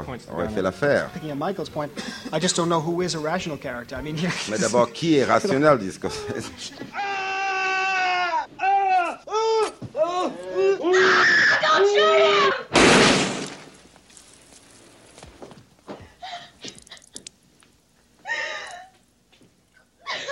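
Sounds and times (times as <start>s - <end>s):
speech: 0.0s - 7.2s
faint cries: 6.0s - 12.7s, 18.2s - 19.0s
frantic screaming and wailing in a film scene: 6.1s - 12.7s
loud gunshot in a film scene: 12.7s - 13.7s
scuffling: 13.1s - 17.3s.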